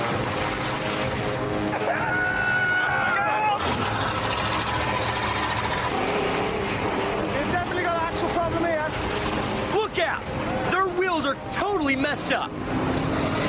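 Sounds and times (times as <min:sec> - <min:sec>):
vehicle engine straining at high revs: 0:00.0 - 0:11.5, 0:12.2 - 0:13.4
vehicle wheels spinning without grip: 0:03.5 - 0:07.2.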